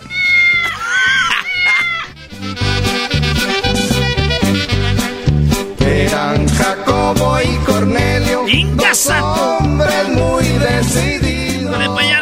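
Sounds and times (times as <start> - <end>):
cat meowing loudly: 0.0 - 2.2, 11.8 - 12.2
laughter: 0.6 - 2.2, 8.5 - 9.5, 11.8 - 12.2
bouncy rhythmic music: 1.3 - 12.2.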